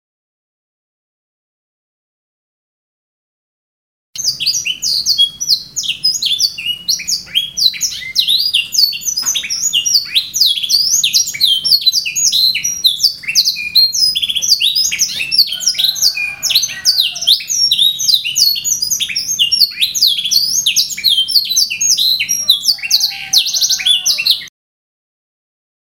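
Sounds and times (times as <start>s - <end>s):
canary in sustained song: 4.2s - 24.5s.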